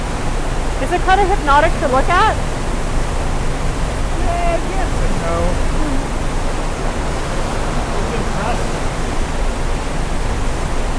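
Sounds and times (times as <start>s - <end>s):
water rushing: 0.0s - 10.9s
speech: 0.9s - 2.5s, 4.5s - 5.8s.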